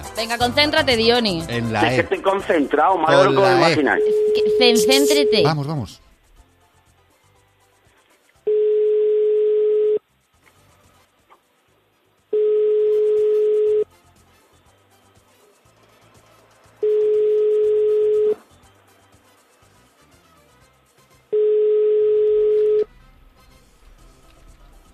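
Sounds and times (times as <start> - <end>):
speech: 0.2 - 6.0
telephone ringback tone of unanswered call: 3.1 - 5.6, 8.5 - 10.0, 12.3 - 13.9, 16.8 - 18.4, 21.3 - 22.9.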